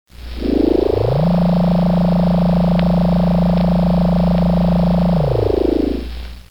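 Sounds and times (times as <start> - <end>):
spaceship elevator: 0.2 - 6.1.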